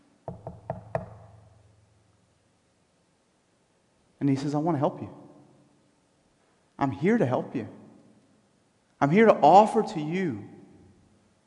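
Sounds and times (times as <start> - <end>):
firm knocks on a wooden door: 0.3 - 1.4
speech: 4.2 - 5.2, 6.8 - 7.8, 9.0 - 10.5.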